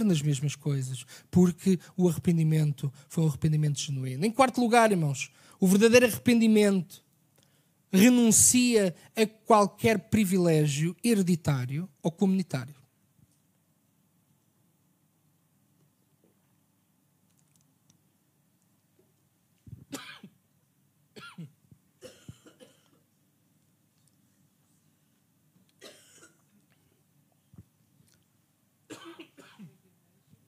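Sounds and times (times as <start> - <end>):
speech: 0.0 - 7.0, 7.9 - 12.8
hissy background: 0.0 - 30.4
person coughing after choking during a sermon: 19.8 - 20.4, 21.2 - 23.0, 25.8 - 26.6, 28.9 - 29.8.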